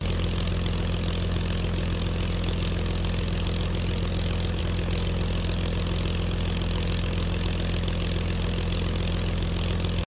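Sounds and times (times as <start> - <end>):
ultralight plane flying slow and steady: 0.0 - 10.0.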